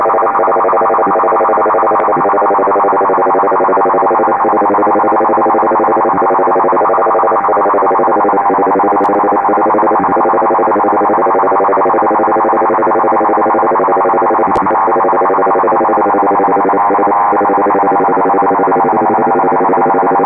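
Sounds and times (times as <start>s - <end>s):
5KHz LF radio perturbations: 0.0s - 20.2s.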